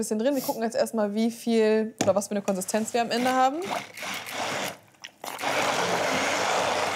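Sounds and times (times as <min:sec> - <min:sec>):
speech: 0:00.0 - 0:04.6
immersion blender puréeing peppers: 0:02.5 - 0:06.9.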